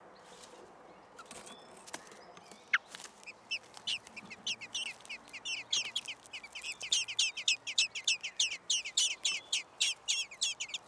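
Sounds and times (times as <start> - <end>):
common blackbird sharp chinking notes: 2.5 - 10.8.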